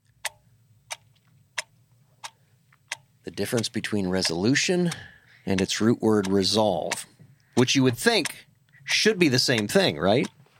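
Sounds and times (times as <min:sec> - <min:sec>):
clock ticking: 0:00.1 - 0:10.4
speech: 0:03.2 - 0:10.4.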